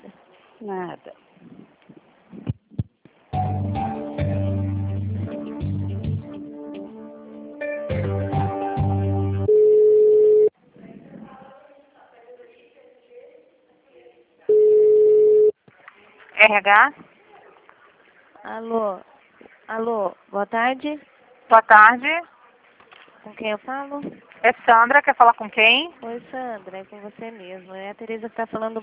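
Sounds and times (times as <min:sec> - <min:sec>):
speech: 0:00.6 - 0:01.6, 0:16.5 - 0:17.0, 0:18.5 - 0:19.1, 0:19.7 - 0:22.3, 0:23.2 - 0:28.8
tinny telephone hold music with repeating chords: 0:03.3 - 0:09.5
long steady telephone line beep: 0:09.5 - 0:10.5, 0:14.5 - 0:15.5.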